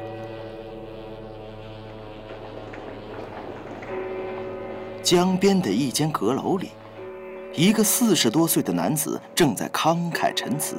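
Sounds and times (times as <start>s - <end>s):
deep dull ship's horn on a river: 0.0s - 9.3s
low rumbling background: 0.4s - 7.6s
speech: 5.0s - 6.8s, 7.6s - 10.7s.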